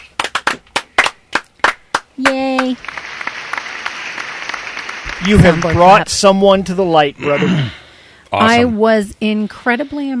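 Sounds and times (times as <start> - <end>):
slow hand claps: 0.0 - 5.7
speech: 2.2 - 3.0, 5.2 - 10.1.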